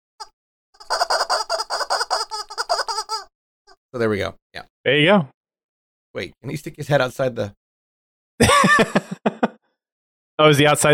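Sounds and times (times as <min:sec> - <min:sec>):
chickens clucking: 0:00.8 - 0:03.3
speech: 0:03.9 - 0:05.4, 0:06.1 - 0:07.6, 0:08.4 - 0:09.4, 0:10.4 - 0:10.9
laughter: 0:08.4 - 0:09.6.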